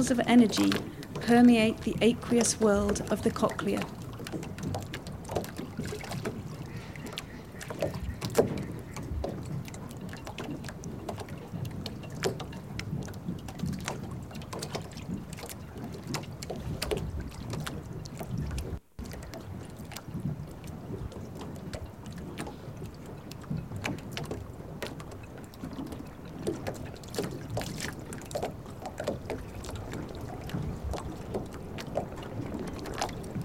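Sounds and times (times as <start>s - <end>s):
speech: 0.0s - 4.5s
river water flowing and sloshing: 0.0s - 18.3s, 19.0s - 33.4s.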